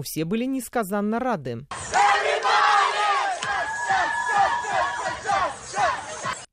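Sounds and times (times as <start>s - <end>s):
speech: 0.0s - 2.7s
crowd of teenage school students in costumes chanting and shouting: 1.7s - 6.5s.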